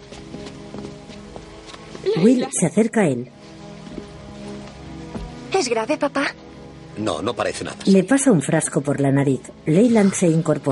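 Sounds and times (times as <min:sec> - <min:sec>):
woman's hurried footsteps running out of a dining room across a hard floor: 0:00.0 - 0:02.1
speech: 0:02.0 - 0:03.4, 0:05.6 - 0:06.4, 0:07.0 - 0:10.6.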